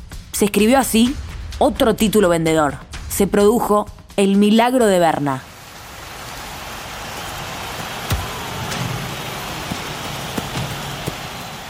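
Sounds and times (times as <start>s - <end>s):
speech: 0.4s - 5.5s
steady rain hissing: 5.4s - 11.6s.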